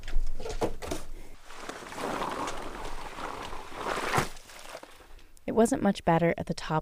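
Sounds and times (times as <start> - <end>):
heavy wet slushy snow splashing on the ground: 1.4 - 5.1
speech: 5.6 - 6.8.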